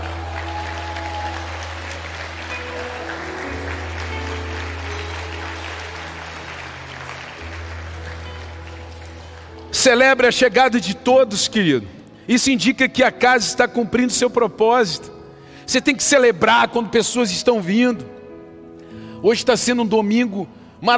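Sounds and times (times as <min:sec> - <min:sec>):
large crowd applauding: 0:00.0 - 0:10.8
speech: 0:09.8 - 0:18.2, 0:19.2 - 0:20.9.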